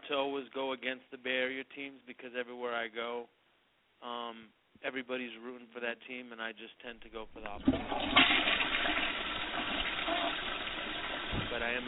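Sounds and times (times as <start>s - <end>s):
speech: 0.1s - 3.4s, 4.0s - 9.0s, 11.5s - 11.8s
toilet flushing: 7.4s - 11.8s.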